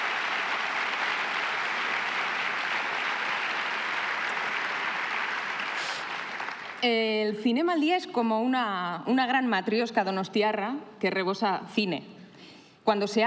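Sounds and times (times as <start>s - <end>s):
large audience applause at award ceremony: 0.0s - 6.8s
speech: 6.8s - 13.2s.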